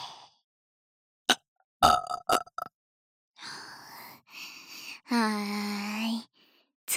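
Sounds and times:
person burping: 1.8s - 2.7s
speech: 5.1s - 5.8s.

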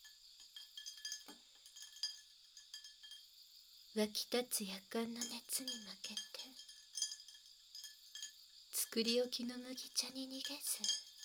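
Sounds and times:
ice cubes clinking against a glass: 0.0s - 3.3s, 5.2s - 8.4s, 10.1s - 11.2s
speech: 3.9s - 6.6s, 9.0s - 11.0s.

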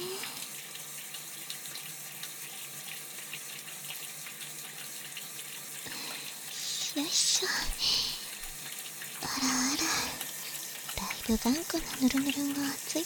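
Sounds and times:
shower water running: 0.0s - 13.0s
speech: 7.0s - 8.2s, 11.3s - 13.0s.

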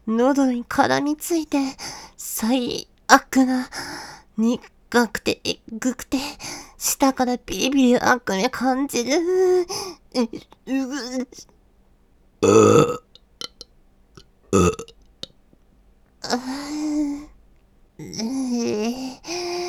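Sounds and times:
speech: 0.1s - 11.5s, 12.4s - 13.0s, 14.5s - 15.0s, 16.2s - 17.3s, 18.0s - 19.6s
loud burp: 12.4s - 13.7s, 14.5s - 15.0s.

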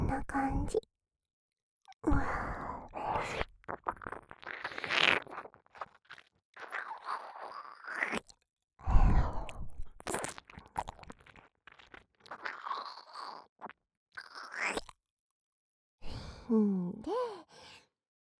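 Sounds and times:
speech: 0.2s - 0.9s
wet slurpy ear-licking mouth sounds: 2.3s - 15.0s
breathy sighs: 16.0s - 17.9s.

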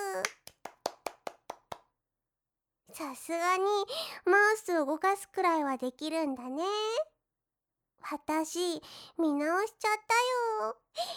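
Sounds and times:
hand clapping: 0.0s - 1.9s
speech: 3.0s - 7.1s, 8.0s - 11.1s.

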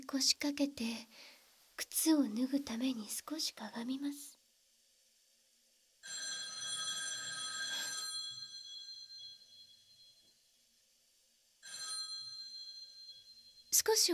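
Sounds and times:
speech: 0.0s - 4.4s, 13.7s - 14.1s
old black rotary telephone ringing in a house: 6.0s - 10.3s, 11.6s - 13.8s.

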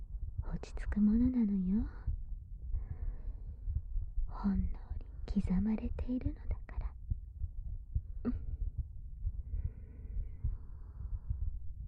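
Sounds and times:
faint hum: 0.0s - 11.8s
heartbeat heard through chest: 0.0s - 11.8s
speech: 0.6s - 2.1s, 4.4s - 6.6s, 8.2s - 8.5s.

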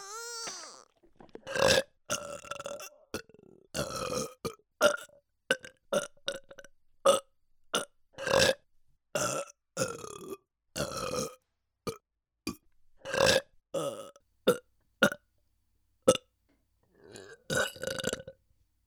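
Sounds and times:
loud burps: 0.6s - 7.2s, 7.8s - 8.6s, 9.2s - 15.2s, 17.2s - 18.4s.

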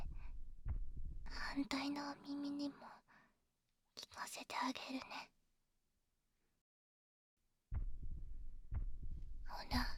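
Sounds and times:
heartbeat thumps: 0.0s - 1.6s, 7.7s - 9.9s
speech: 1.6s - 3.0s, 4.0s - 5.4s, 9.5s - 9.9s.

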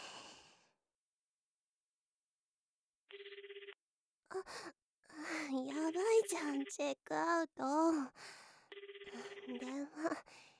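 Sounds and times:
telephone ringing with a warbling electronic pulse: 3.1s - 3.8s, 5.8s - 7.0s, 8.7s - 9.8s
speech: 4.3s - 8.4s, 9.1s - 10.5s.

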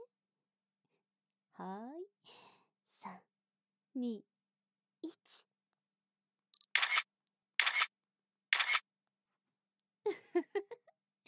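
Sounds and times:
speech: 1.6s - 2.4s, 4.0s - 4.3s
camera shutter clicks: 6.6s - 7.9s, 8.5s - 8.8s.

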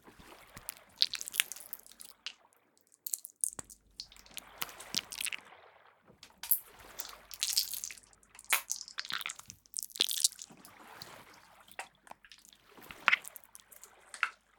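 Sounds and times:
small air bubbles popping inside squishy slime: 0.5s - 5.4s, 6.5s - 10.6s, 12.1s - 13.8s.

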